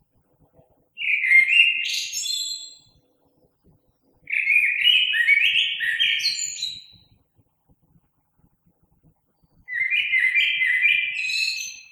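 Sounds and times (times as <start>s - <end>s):
common blackbird song: 1.0s - 7.2s, 9.4s - 11.9s.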